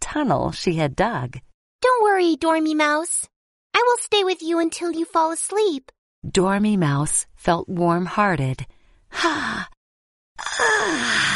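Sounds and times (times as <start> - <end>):
speech: 0.1 - 9.8, 10.4 - 11.3
person yawning: 10.4 - 11.3.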